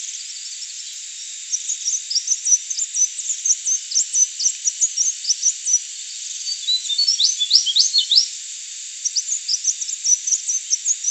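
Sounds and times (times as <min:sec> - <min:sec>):
crimson sunbird singing high thin twittering notes: 0:00.0 - 0:08.4, 0:09.0 - 0:11.0.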